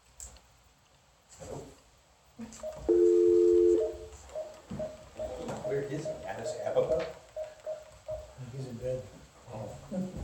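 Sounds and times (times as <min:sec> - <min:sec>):
telephone dialing beeps: 0:02.7 - 0:04.0.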